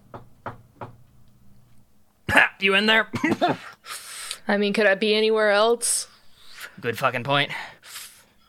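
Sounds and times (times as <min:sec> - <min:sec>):
firm knocks on a solid cell door: 0:00.1 - 0:01.0
speech: 0:02.3 - 0:03.7, 0:04.5 - 0:06.1, 0:06.8 - 0:07.7.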